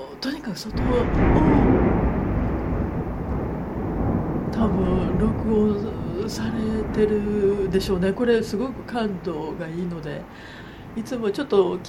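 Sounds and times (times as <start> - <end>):
speech: 0.2 - 1.6, 4.6 - 11.8
thunder rumbling during a thunderstorm: 0.7 - 11.8.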